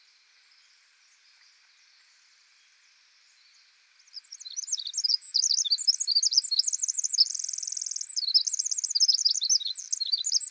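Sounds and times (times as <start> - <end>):
Pacific wren singing in forest: 4.1 - 10.4.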